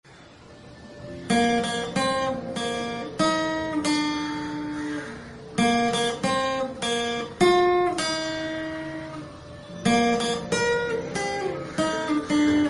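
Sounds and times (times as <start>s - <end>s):
guitar melody: 0.7s - 12.6s.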